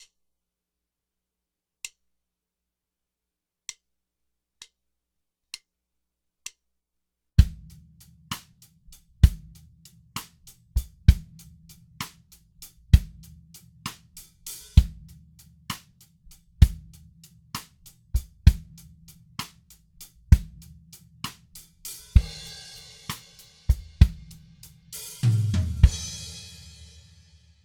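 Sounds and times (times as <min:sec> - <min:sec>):
drums in a panning test: 0:07.4 - 0:27.6.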